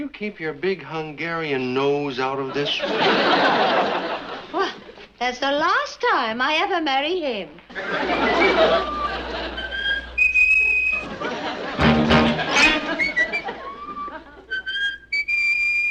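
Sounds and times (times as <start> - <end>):
speech: 0.1 - 9.0
laughter: 2.4 - 5.0, 7.7 - 14.6
person whistling a tune: 8.2 - 11.1, 11.8 - 15.9.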